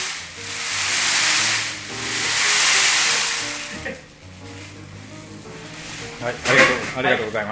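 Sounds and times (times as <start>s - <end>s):
azuki beans poured and rolled in a bowl to imitate sea waves: 0.0s - 7.5s
speech: 6.2s - 7.5s.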